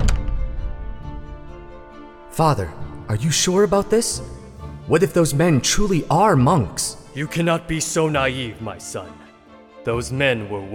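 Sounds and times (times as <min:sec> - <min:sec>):
heavy door slamming shut with a booming thunk: 0:00.0 - 0:01.0
speech: 0:02.4 - 0:09.2, 0:09.8 - 0:10.7.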